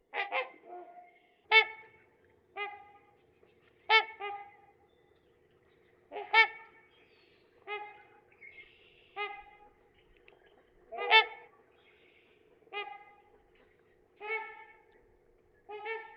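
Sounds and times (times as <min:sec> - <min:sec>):
Trumpeter swan giving nasal horn-like honks: 0:00.1 - 0:03.2, 0:03.8 - 0:04.8, 0:06.1 - 0:07.0, 0:07.6 - 0:09.8, 0:10.9 - 0:11.7, 0:12.7 - 0:15.0, 0:15.6 - 0:16.1.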